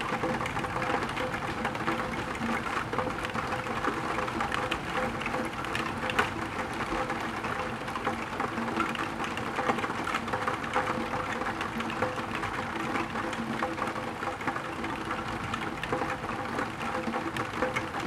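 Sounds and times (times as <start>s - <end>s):
rain pattering on a tilted window: 0.0s - 18.0s.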